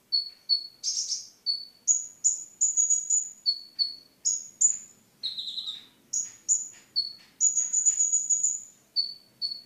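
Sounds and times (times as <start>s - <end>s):
Oriental magpie-robin song: 0.0s - 9.6s.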